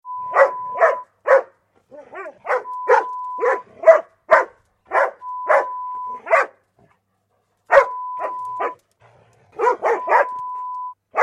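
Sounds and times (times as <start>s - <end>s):
dog barking: 0.3s - 6.6s, 7.7s - 8.8s, 9.6s - 10.5s.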